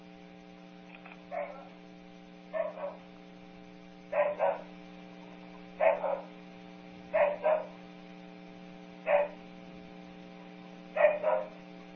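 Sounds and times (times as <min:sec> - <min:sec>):
steady low electrical hum: 0:00.0 - 0:11.9
dog barking harshly: 0:01.3 - 0:01.7, 0:02.6 - 0:03.0, 0:04.1 - 0:04.7, 0:05.8 - 0:06.4, 0:07.2 - 0:07.8, 0:09.1 - 0:09.4, 0:11.0 - 0:11.6.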